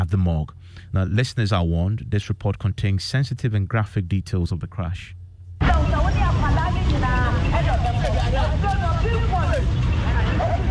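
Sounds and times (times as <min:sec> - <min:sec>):
speech: 0:00.0 - 0:05.2
megaphone voice announcements at busy bus terminal: 0:00.0 - 0:10.6
deep bus engine rumble at bus terminal: 0:03.8 - 0:10.6
crowd murmuring at bus terminal: 0:05.6 - 0:10.6.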